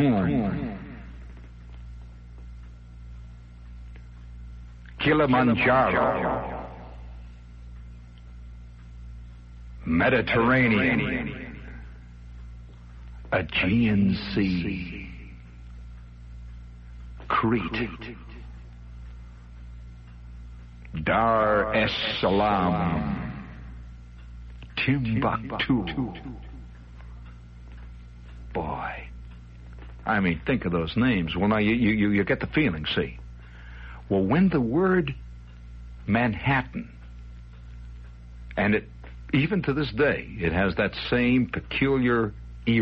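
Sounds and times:
single words spoken with echo-chamber reverb: 0.0s - 1.3s, 4.9s - 7.2s, 9.8s - 12.0s, 13.3s - 15.6s, 17.2s - 18.7s, 20.9s - 23.8s, 24.6s - 26.8s, 28.5s - 29.2s, 30.0s - 35.2s, 38.6s - 42.7s
steady low hum: 0.0s - 42.7s
speech: 5.1s - 6.6s, 9.9s - 11.4s, 13.3s - 15.1s, 17.4s - 18.3s, 20.9s - 23.2s, 24.8s - 26.5s, 30.0s - 33.2s, 34.1s - 35.2s, 36.0s - 37.0s, 38.6s - 42.7s.

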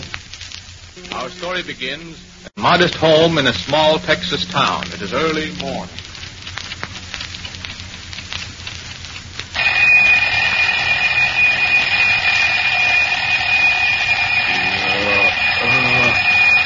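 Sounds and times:
speech: 1.0s - 6.0s
alarm clock bell ringing at a home in the early morning: 9.6s - 16.6s.

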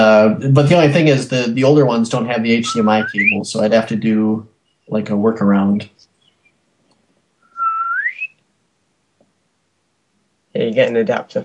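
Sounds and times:
speech: 0.2s - 6.0s, 10.6s - 11.4s
single clear whistle sliding upward in pitch: 2.6s - 3.4s, 7.4s - 8.4s.

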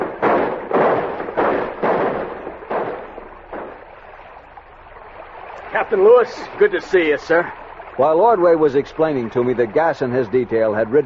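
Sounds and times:
celebratory volley of rifle shots from men arriving in canoes: 0.0s - 4.0s
speech: 5.8s - 11.0s.

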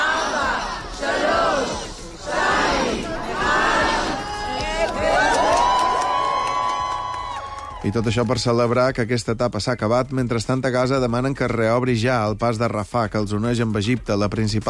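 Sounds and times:
large crowd shouting a countdown in Hostages Square Israel: 0.0s - 6.0s
large crowd cheering in Hostages Square Israel: 0.0s - 8.9s
speech: 7.8s - 14.6s.

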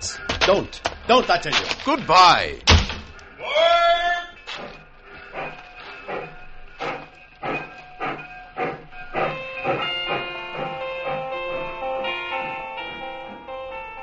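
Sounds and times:
speech: 0.5s - 2.7s
train chuffing pulling away from a station: 4.2s - 14.0s
tonal drone: 4.9s - 14.0s.

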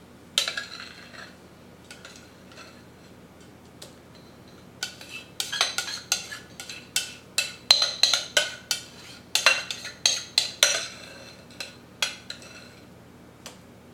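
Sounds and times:
spatula spreading refried beans in a glass Pyrex bowl: 0.4s - 2.8s, 4.8s - 12.8s.

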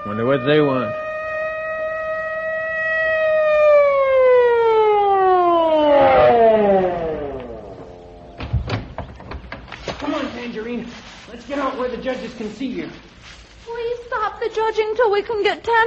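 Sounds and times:
police car siren wailing: 0.0s - 8.4s
speech: 0.1s - 1.0s, 12.0s - 13.4s, 14.6s - 15.8s
sharp thumps: 5.8s - 10.1s.

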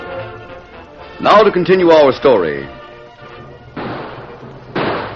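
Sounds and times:
speech: 1.4s - 2.8s
loud gunshots: 3.7s - 5.1s.

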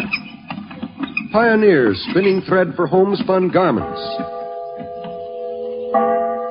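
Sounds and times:
speech: 1.3s - 4.4s
large bell ringing: 3.5s - 6.4s.

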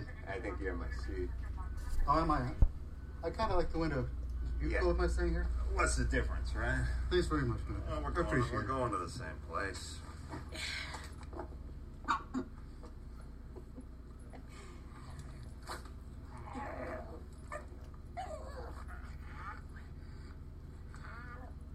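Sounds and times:
speech: 0.4s - 11.5s
service dog whimpering in short high whines: 16.3s - 20.3s, 20.9s - 21.7s.

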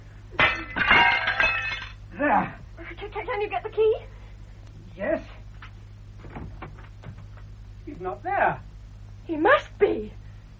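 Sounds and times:
breaking glass shards tinkling: 0.4s - 2.0s
glass panel being smashed: 0.4s - 2.0s
speech: 2.4s - 4.1s, 5.0s - 5.3s, 8.0s - 8.7s, 9.3s - 10.2s.

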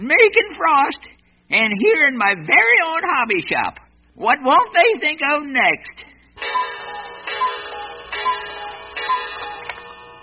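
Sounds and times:
speech: 0.0s - 6.6s
faint ringing hum: 6.0s - 10.2s
clock ticking: 6.4s - 10.1s.

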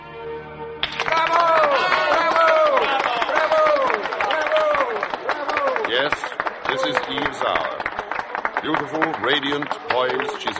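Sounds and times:
applause in a large hall at an awards ceremony: 0.8s - 10.5s
crowd shouting bravos: 1.0s - 7.5s
speech: 6.8s - 7.8s, 8.6s - 10.5s.

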